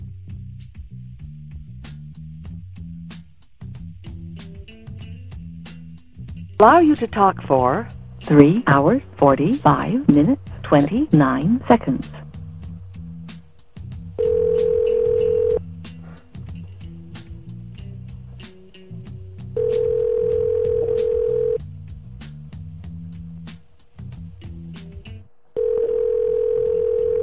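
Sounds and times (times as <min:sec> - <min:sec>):
speech: 0:06.6 - 0:12.2
telephone dial tone: 0:14.2 - 0:15.6, 0:19.6 - 0:21.6, 0:25.6 - 0:27.2.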